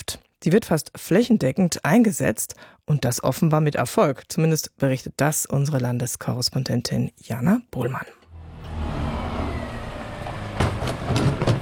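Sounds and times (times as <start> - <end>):
speech: 0.4 - 8.2
garbage truck engine idling in street: 8.2 - 11.6.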